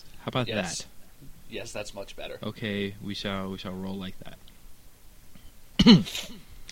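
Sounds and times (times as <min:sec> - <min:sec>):
speech: 0:00.0 - 0:04.5, 0:05.8 - 0:06.4
person giving a short gruff cough: 0:05.8 - 0:06.4.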